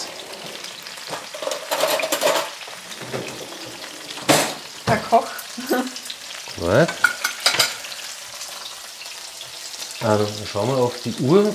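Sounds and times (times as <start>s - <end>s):
utensils scraping and clinking while stirring and turning roast meat: 0.0s - 4.7s, 6.8s - 8.0s
roast meat frying in a pan: 0.0s - 11.5s
speech: 4.9s - 5.9s, 6.6s - 7.0s, 10.0s - 11.5s.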